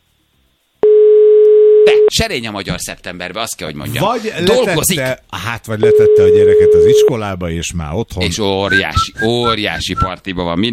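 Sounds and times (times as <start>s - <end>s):
telephone busy signal while someone is being called: 0.8s - 2.1s, 5.9s - 7.1s
speech: 1.8s - 10.7s.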